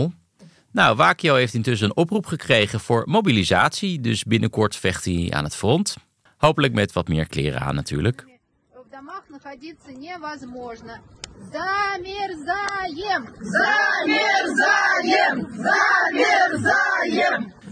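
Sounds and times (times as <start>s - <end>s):
speech: 0.0s - 8.3s, 9.0s - 17.6s
group of women chanting a protest slogan: 11.6s - 17.6s.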